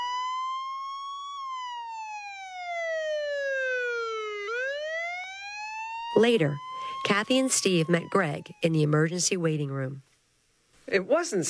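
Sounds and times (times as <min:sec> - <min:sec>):
ambulance siren wailing: 0:00.0 - 0:08.9
speech: 0:06.2 - 0:10.1, 0:10.9 - 0:11.4.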